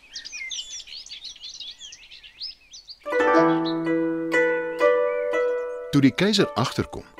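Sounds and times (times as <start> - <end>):
nightingale singing: 0.0 - 7.1
ringing music with struck chime-like notes: 3.1 - 7.1
speech: 6.0 - 7.1.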